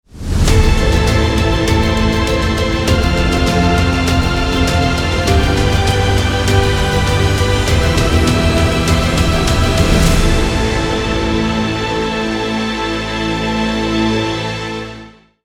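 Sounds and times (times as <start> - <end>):
epic cinematic opening music: 0.1 - 15.2.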